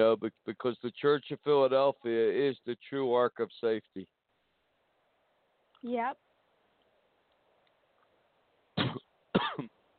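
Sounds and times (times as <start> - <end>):
speech: 0.0 - 4.2, 5.8 - 6.2
person coughing in a reverberant room: 8.8 - 9.7.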